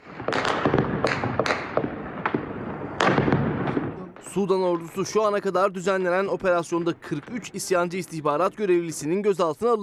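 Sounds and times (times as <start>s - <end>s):
rapid irregular gunshots during armed clashes: 0.0s - 5.1s
speech: 4.4s - 9.8s.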